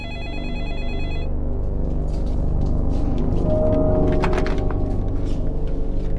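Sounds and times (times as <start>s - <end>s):
electronic telephone ringing: 0.0s - 1.3s
low rumble: 0.0s - 6.1s.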